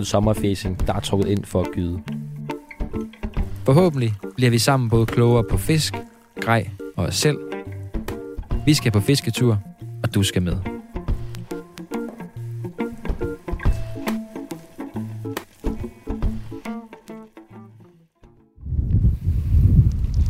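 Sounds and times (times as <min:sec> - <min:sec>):
speech: 0:00.0 - 0:02.2, 0:03.7 - 0:07.5, 0:08.7 - 0:10.7
melodic music passage: 0:01.2 - 0:17.6
strong wind gusts buffeting: 0:18.6 - 0:20.2.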